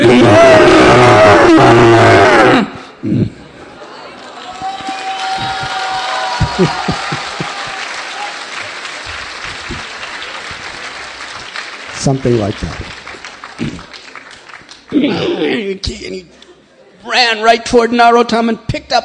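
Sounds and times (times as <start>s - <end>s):
human voice mimicking a giant enraged screaming elephant: 0.0s - 2.8s
laughter: 3.3s - 8.4s, 9.0s - 10.9s, 14.9s - 15.7s
speech: 6.6s - 6.9s, 12.0s - 13.0s, 15.0s - 16.4s, 17.0s - 19.0s.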